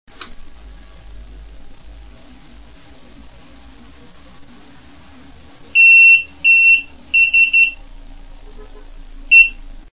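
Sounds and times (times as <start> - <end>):
sump alarm: 5.8 - 7.8, 9.3 - 9.6.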